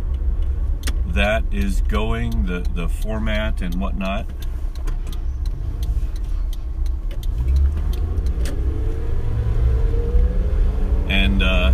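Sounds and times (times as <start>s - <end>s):
car engine and road drone while driving: 0.0s - 11.7s
speech: 1.2s - 4.5s, 11.4s - 11.7s
faint scattered clicks: 1.6s - 8.6s.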